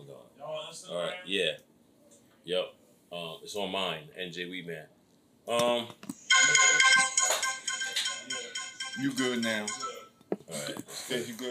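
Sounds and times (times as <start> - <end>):
speech: 0.7 - 1.7, 2.4 - 7.1, 9.0 - 9.9, 10.5 - 11.4
phone ringtone with bright electronic melody: 6.3 - 10.2.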